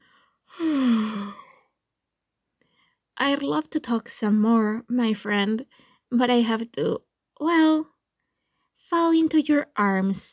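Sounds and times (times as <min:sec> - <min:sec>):
desperate long drawn-out yawn: 0:00.5 - 0:01.6
speech: 0:03.2 - 0:07.9, 0:08.9 - 0:10.3.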